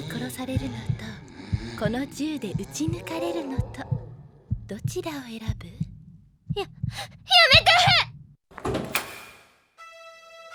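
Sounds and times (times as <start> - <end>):
speech: 0.2 - 4.0, 4.7 - 5.8, 6.6 - 8.1
door opening with loud clatter: 8.5 - 9.5.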